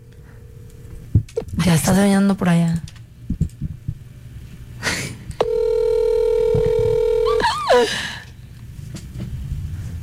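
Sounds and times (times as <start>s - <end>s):
quiet low noise: 0.0s - 10.0s
speech: 1.6s - 2.9s, 7.8s - 8.1s
ringback tone on a phone line: 5.4s - 7.5s.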